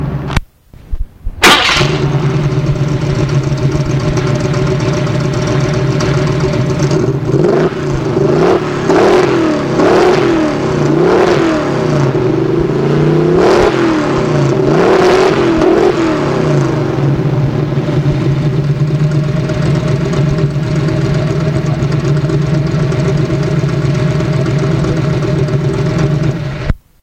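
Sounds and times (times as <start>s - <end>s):
Ford Mustang Mach 1 engine: 0.0s - 0.5s, 1.3s - 26.8s.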